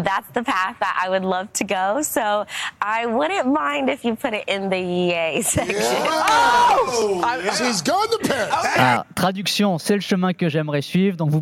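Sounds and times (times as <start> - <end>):
speech: 0.0 - 11.4
laughter: 5.4 - 9.0
TV presenters cheering and whooping with joy: 5.6 - 9.0.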